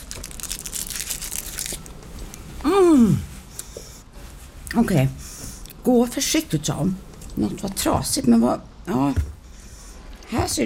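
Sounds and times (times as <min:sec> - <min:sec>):
crinkly chocolate wrapper rustling: 0:00.0 - 0:02.5
speech: 0:03.0 - 0:03.2, 0:04.8 - 0:05.2, 0:05.8 - 0:09.3, 0:10.4 - 0:10.6.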